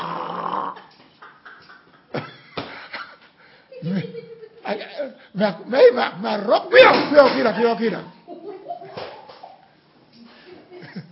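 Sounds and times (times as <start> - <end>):
person imitating snoring: 0.0 - 0.9
laughter: 0.8 - 6.0, 10.4 - 11.1
speech: 4.7 - 8.2.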